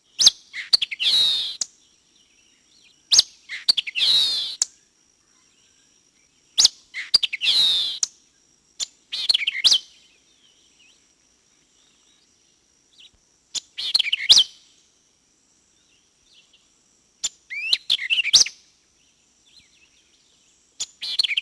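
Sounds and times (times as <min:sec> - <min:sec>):
white-eyed vireo calls: 0:00.0 - 0:01.7, 0:02.8 - 0:05.8, 0:06.5 - 0:08.1, 0:08.8 - 0:11.0, 0:12.9 - 0:14.5, 0:17.2 - 0:18.6, 0:19.5 - 0:21.4.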